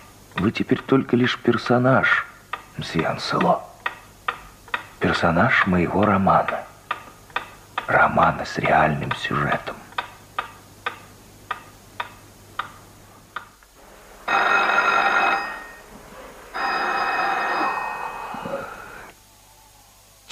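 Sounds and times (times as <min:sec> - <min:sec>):
clock ticking: 0:00.3 - 0:12.8
speech: 0:00.4 - 0:03.7, 0:05.0 - 0:06.7, 0:07.9 - 0:09.8
old telephone bell ringing: 0:14.3 - 0:15.9, 0:16.5 - 0:19.1.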